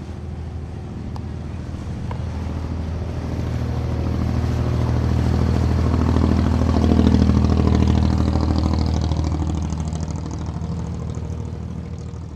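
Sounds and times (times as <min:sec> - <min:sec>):
flat-bottomed fiberglass motorboat engine roaring over a shallow gulf: 0:00.0 - 0:12.3.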